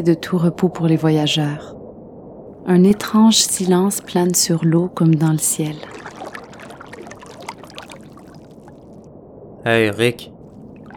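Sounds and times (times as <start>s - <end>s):
speech: 0.0s - 1.8s, 2.6s - 6.2s, 9.6s - 10.3s
oar lightly skimming the water while rowing a boat: 3.0s - 9.0s, 10.5s - 10.9s.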